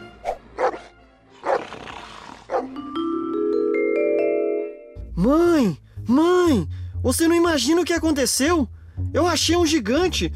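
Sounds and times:
dog barking: 0:00.6 - 0:01.7, 0:02.5 - 0:02.7
dog snarling growl: 0:01.4 - 0:02.7
rising sustained musical tone: 0:02.7 - 0:05.8
speech: 0:05.2 - 0:10.3.

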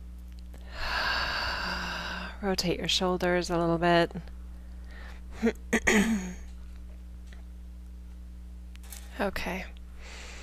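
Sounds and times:
deep breath during a guided meditation session: 0:00.6 - 0:02.4, 0:04.8 - 0:05.3, 0:10.0 - 0:10.4
speech: 0:02.4 - 0:04.4, 0:05.4 - 0:06.4, 0:09.2 - 0:09.8.

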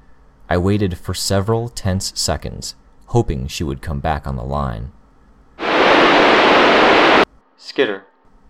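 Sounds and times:
speech: 0:00.5 - 0:05.0, 0:07.6 - 0:08.1
loud radio static: 0:05.6 - 0:07.2.

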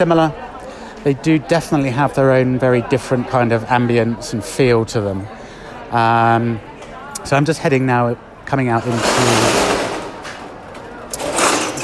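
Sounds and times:
speech: 0:00.0 - 0:00.4, 0:01.0 - 0:09.6
street ambience in the centre of Madrid Spain: 0:00.0 - 0:11.8
metal shop shutter rolled down in Madrid Spain: 0:08.8 - 0:10.5, 0:11.2 - 0:11.8.

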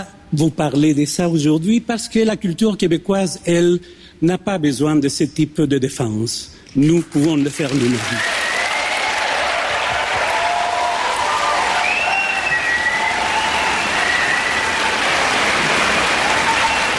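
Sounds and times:
speech: 0:00.0 - 0:08.4
crowd applauding in a standing ovation: 0:07.2 - 0:16.9.

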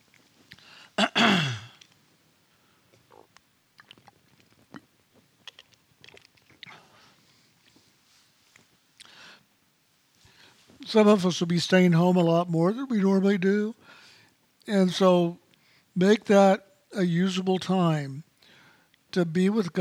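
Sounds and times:
person clearing throat with something stuck in the throat: 0:01.0 - 0:01.8
speech: 0:10.9 - 0:14.0, 0:14.6 - 0:15.4, 0:16.0 - 0:18.3, 0:19.1 - 0:19.7.

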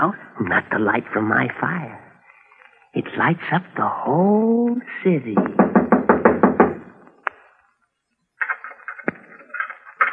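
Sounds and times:
speech: 0:00.0 - 0:02.0, 0:02.9 - 0:05.8
loud rapid knocking on a door: 0:05.4 - 0:06.9.

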